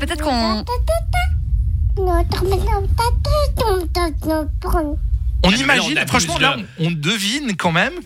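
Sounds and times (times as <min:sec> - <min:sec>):
speech: 0:00.0 - 0:01.0, 0:02.0 - 0:08.0
steady low rumble of noise: 0:00.0 - 0:08.0
baby babbling: 0:02.0 - 0:05.0.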